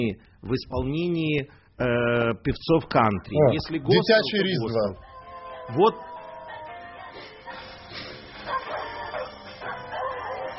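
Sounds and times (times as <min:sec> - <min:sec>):
speech: 0:00.0 - 0:05.1, 0:05.7 - 0:06.1
dog barking: 0:08.4 - 0:10.5.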